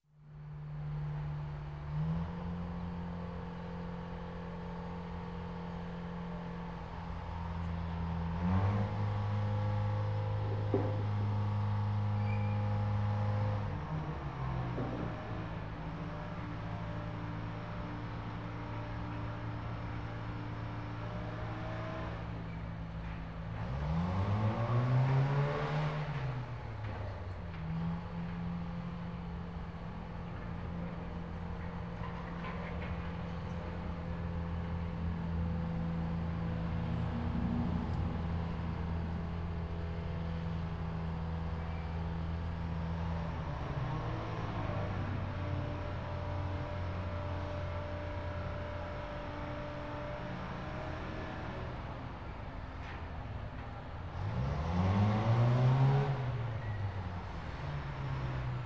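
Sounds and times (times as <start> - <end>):
distant truck engine noise: 0.2 - 58.6.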